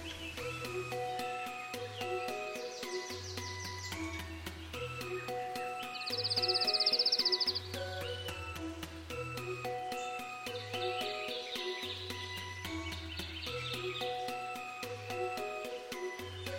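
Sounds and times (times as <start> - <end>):
birds chirping and twittering in an aviary: 0.0 - 16.5
music with a stepping bass line: 0.0 - 16.5.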